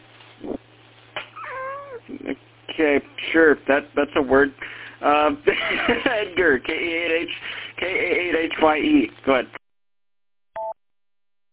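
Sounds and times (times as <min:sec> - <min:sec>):
cat chirp: 0:01.2 - 0:02.1
cat meowing: 0:01.3 - 0:02.1
speech: 0:02.1 - 0:09.6
laughter: 0:05.4 - 0:06.7.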